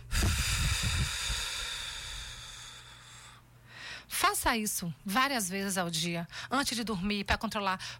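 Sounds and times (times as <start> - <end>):
forceful airy exhale as a breathing exercise: 0.0 - 4.0
long deep inhale as a breathing exercise: 0.0 - 4.1
speech: 4.3 - 7.9.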